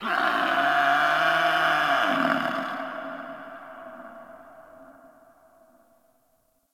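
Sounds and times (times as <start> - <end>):
distant creature: 0.0 - 6.0.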